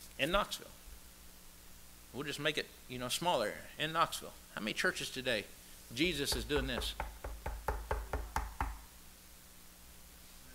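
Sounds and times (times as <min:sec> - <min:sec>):
speech: 0:00.2 - 0:00.8, 0:02.1 - 0:07.2
knocking on a door: 0:06.3 - 0:08.9.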